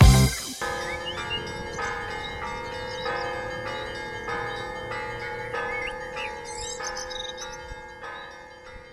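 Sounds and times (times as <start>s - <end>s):
church bells pealing: 0.0s - 8.9s.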